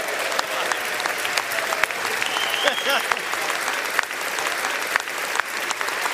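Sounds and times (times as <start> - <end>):
whoops and cheers from Congress members: 0.0 - 3.6
Congress members applauding in a large room: 0.0 - 6.1
laughter: 0.0 - 6.1.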